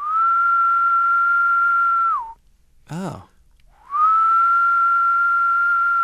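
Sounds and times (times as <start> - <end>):
person whistling imitating a Decim periodical cicada mating call: 0.0 - 2.4, 3.8 - 6.0
person giving a brief spoken exclamation: 2.9 - 3.3
speech: 2.9 - 3.3.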